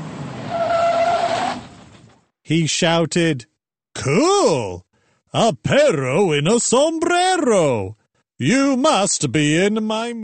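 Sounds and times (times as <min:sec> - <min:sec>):
expensive car driving by: 0:00.0 - 0:02.1
brief high tire squeal: 0:00.0 - 0:02.2
speech: 0:02.5 - 0:10.2.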